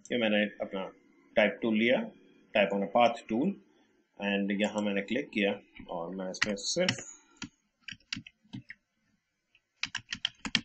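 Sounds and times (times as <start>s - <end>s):
speech: 0.1s - 7.2s
typing on a computer keyboard: 5.8s - 8.8s, 9.8s - 10.6s.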